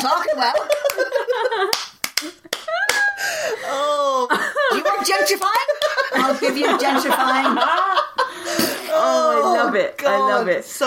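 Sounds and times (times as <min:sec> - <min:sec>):
speech: 0:00.0 - 0:01.8, 0:06.3 - 0:08.0, 0:09.0 - 0:10.8
laughter: 0:00.0 - 0:09.9
sharp hand claps: 0:00.6 - 0:03.2, 0:05.2 - 0:06.1
bursts of voiced sound from people: 0:02.7 - 0:05.3, 0:08.2 - 0:10.6.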